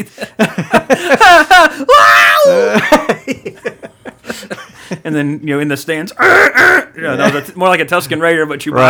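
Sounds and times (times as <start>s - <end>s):
speech: 0.0s - 3.9s, 5.1s - 8.8s
laughter: 0.0s - 5.1s, 6.2s - 7.6s
excited talking: 1.2s - 3.2s, 5.0s - 8.8s
voice imitating the Wilhelm scream: 1.5s - 3.0s, 6.2s - 7.0s.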